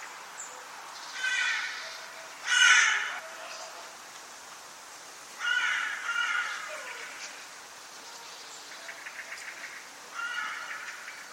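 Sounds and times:
steady background hiss: 0:00.0 - 0:11.3
bird giving harsh raspy caws: 0:01.2 - 0:03.3, 0:05.4 - 0:07.2, 0:08.9 - 0:11.3.

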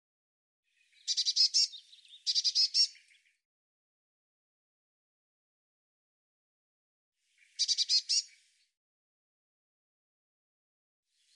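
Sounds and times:
bird chirping harshly: 0:01.1 - 0:02.9, 0:07.6 - 0:08.2.

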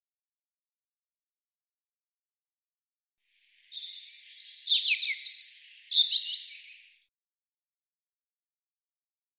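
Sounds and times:
European robin singing a rich warbling phrase: 0:03.4 - 0:07.1.

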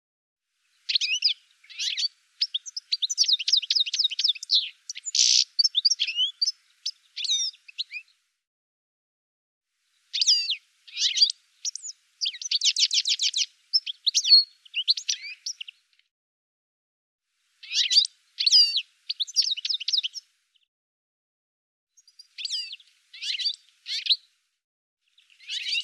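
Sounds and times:
bird chirping in rapid bursts: 0:00.9 - 0:08.1, 0:10.1 - 0:15.7, 0:17.6 - 0:20.2, 0:22.0 - 0:24.2, 0:25.2 - 0:25.8.

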